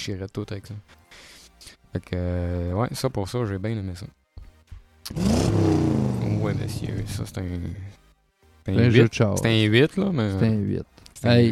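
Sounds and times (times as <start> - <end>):
speech: 0.0 - 1.3, 1.9 - 4.2, 5.1 - 8.0, 8.7 - 11.5
voice imitating a car engine revving: 5.1 - 7.3.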